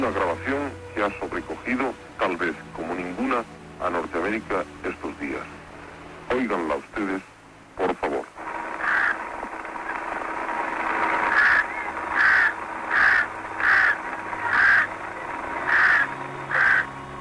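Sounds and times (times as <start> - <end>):
speech: 0.0 - 5.6, 6.3 - 8.2
constant hissing noise: 0.0 - 17.2
crows cawing over a cyclone-struck mass grave in Pakistan: 8.8 - 9.4, 11.0 - 17.0.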